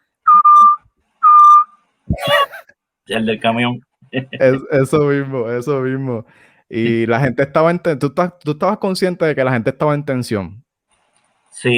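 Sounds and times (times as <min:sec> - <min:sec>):
person whistling two loud steady notes: 0:00.3 - 0:02.3
laughter: 0:02.2 - 0:02.6
speech: 0:03.1 - 0:10.6, 0:11.5 - 0:11.7.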